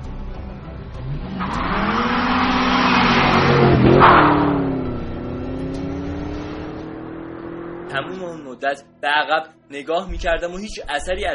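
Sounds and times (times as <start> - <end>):
car engine revving and pulling away: 0.7 - 8.4
tire squeal: 1.0 - 7.2
speech: 8.1 - 11.3.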